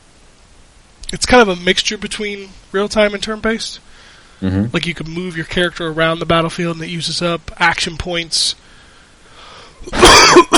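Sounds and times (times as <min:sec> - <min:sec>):
speech: 0:01.1 - 0:08.6
person coughing with harsh rasping hacks: 0:09.9 - 0:10.5.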